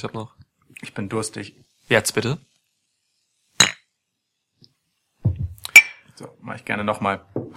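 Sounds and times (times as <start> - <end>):
speech: 0.0 - 2.5, 6.2 - 7.5
glass clinking against bottle in toast: 3.6 - 3.9, 5.7 - 6.1.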